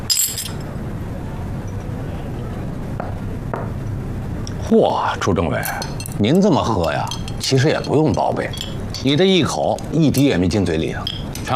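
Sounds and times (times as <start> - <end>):
glasses clinking in a toast: 0.0 - 0.7, 5.6 - 11.5
low room murmur: 0.0 - 11.5
speech: 4.7 - 11.5.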